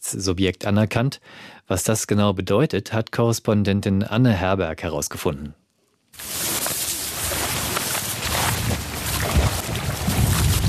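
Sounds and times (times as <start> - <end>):
speech: 0.1 - 5.6
wind blowing through reeds near open water: 6.2 - 10.6.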